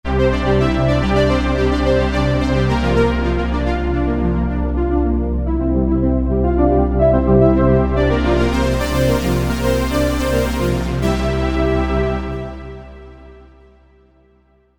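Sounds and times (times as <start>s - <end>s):
synthesizer strings: 0.1s - 13.8s.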